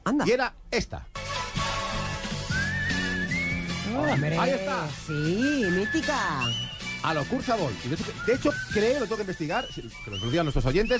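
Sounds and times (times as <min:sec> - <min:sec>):
speech: 0:00.1 - 0:01.2, 0:03.9 - 0:10.9
steady rhythmic backing music: 0:01.1 - 0:10.9
whistled TV show theme tune: 0:02.2 - 0:10.9.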